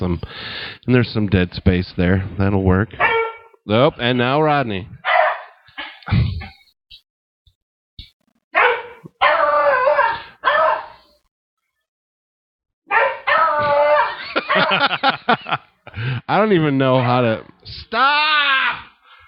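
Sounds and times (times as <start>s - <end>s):
speech: 0.0s - 5.1s, 15.5s - 18.3s
dogs barking: 3.0s - 4.4s, 5.0s - 6.0s, 8.6s - 11.1s, 12.9s - 15.0s, 16.9s - 17.2s
laughter: 14.1s - 16.2s.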